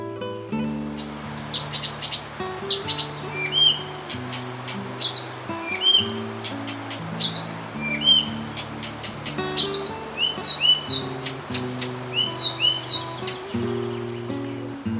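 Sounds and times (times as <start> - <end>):
Blyth's reed warbler singing: 0.8 - 14.9.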